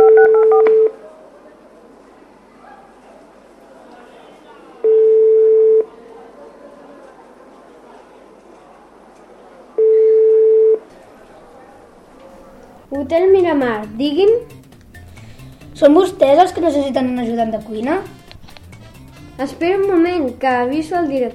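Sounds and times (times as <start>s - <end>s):
long telephone beeps on a landline call: 0.0s - 1.0s, 4.8s - 5.9s, 9.8s - 10.8s
faint murmur: 0.0s - 13.2s
speech: 13.1s - 14.6s, 15.8s - 18.2s, 19.4s - 21.3s.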